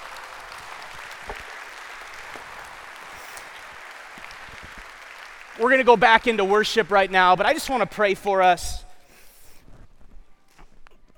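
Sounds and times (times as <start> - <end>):
crowd at a worship service applauding: 0.0 - 7.7
speech: 5.6 - 8.8.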